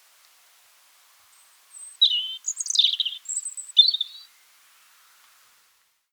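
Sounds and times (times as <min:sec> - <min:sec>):
European robin song: 0:01.3 - 0:04.3.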